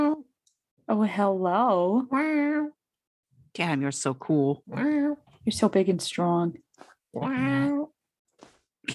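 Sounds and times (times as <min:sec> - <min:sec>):
speech: 0:00.9 - 0:02.8, 0:03.6 - 0:07.9
loud drawn-out cat meow: 0:07.2 - 0:07.9.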